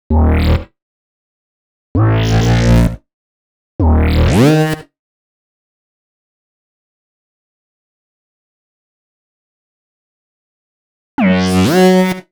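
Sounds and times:
electro synth bass in D sharp minor: 0:00.1 - 0:00.7, 0:02.0 - 0:03.0, 0:03.8 - 0:04.7, 0:11.2 - 0:11.9.

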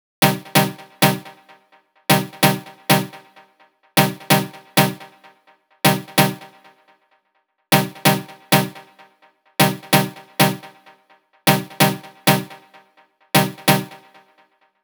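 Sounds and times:
progressive drum kit melody: 0:00.2 - 0:01.3, 0:02.1 - 0:03.2, 0:04.0 - 0:05.1, 0:05.9 - 0:06.5, 0:07.8 - 0:08.9, 0:09.6 - 0:10.7, 0:11.5 - 0:12.6, 0:13.4 - 0:14.0.

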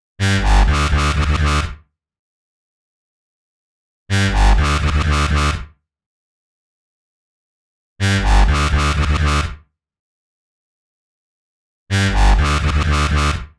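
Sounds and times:
complex electro synth bass in B: 0:00.2 - 0:01.6, 0:04.1 - 0:05.6, 0:08.0 - 0:09.4, 0:11.9 - 0:13.4.

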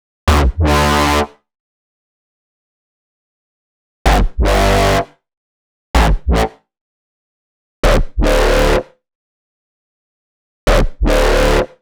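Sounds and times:
Dm bass: 0:00.3 - 0:01.4, 0:04.1 - 0:05.2, 0:06.0 - 0:06.6, 0:07.8 - 0:09.0, 0:10.7 - 0:11.8.

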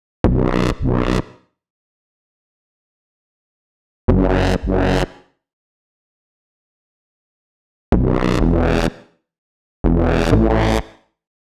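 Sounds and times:
bass in B minor at 125 BPM: 0:00.2 - 0:01.3, 0:04.1 - 0:05.2, 0:07.9 - 0:09.0, 0:09.8 - 0:10.9.

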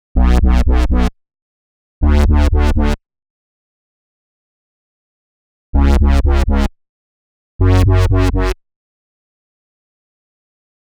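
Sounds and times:
bass in B minor: 0:00.2 - 0:01.1, 0:02.0 - 0:03.0, 0:05.8 - 0:06.7, 0:07.6 - 0:08.6.

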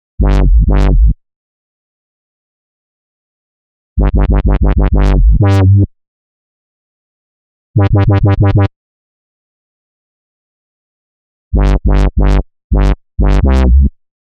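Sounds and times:
complex electro synth bass in G minor at 127 BPM: 0:00.2 - 0:01.2, 0:04.0 - 0:05.9, 0:07.8 - 0:08.7, 0:11.6 - 0:14.0.

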